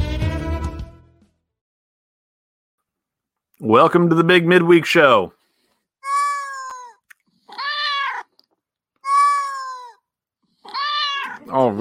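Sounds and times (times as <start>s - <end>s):
speech: 3.6s - 5.4s, 11.5s - 11.8s
cat meowing: 6.0s - 8.4s, 9.0s - 11.6s.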